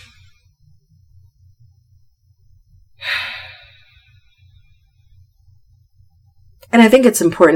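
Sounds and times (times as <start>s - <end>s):
faint low hum: 0.0s - 7.5s
deep tactical breathing drawn in close to the mic: 3.0s - 3.9s
speech: 6.7s - 7.5s.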